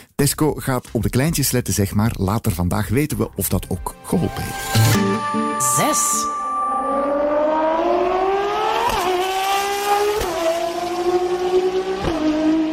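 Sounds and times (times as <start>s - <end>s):
speech: 0.2s - 7.0s
Ferrari sports car engine revving hard and racing past with gear changes: 7.0s - 12.7s.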